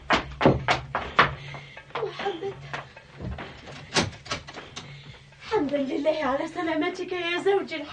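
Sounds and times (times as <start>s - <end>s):
sharp clicks and knocking thuds of door: 0.1s - 1.4s, 2.7s - 4.9s
door being handled and opened: 3.3s - 4.9s
speech: 6.1s - 7.9s.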